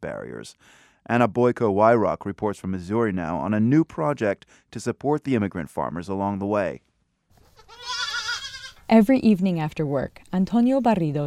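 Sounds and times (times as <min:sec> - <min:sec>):
speech: 0:00.0 - 0:06.9, 0:08.9 - 0:11.2
goat bleating: 0:07.4 - 0:08.9.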